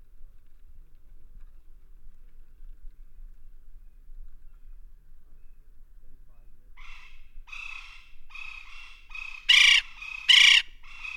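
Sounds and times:
West Indian woodpecker calling: 0:06.8 - 0:11.1.

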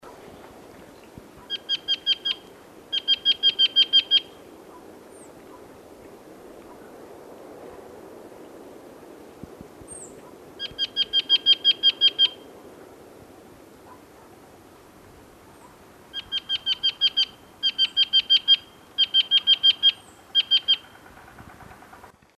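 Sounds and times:
Yunnan nuthatch calling: 0:01.4 - 0:04.4, 0:09.9 - 0:12.4, 0:15.6 - 0:21.2.

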